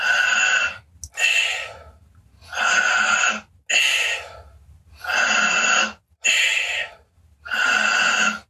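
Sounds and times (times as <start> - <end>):
deep rhythmic breathing through the mouth: 1.2 - 5.6, 6.2 - 8.4.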